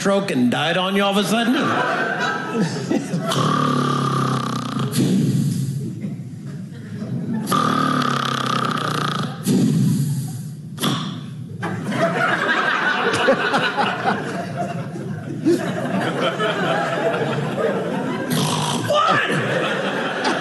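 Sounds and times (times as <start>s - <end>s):
speech: 0.0s - 4.0s
laughter: 1.4s - 3.6s, 5.9s - 7.5s, 11.5s - 20.3s
voice imitating a father's loud rough snoring: 3.2s - 5.8s, 7.4s - 11.2s, 18.3s - 18.9s.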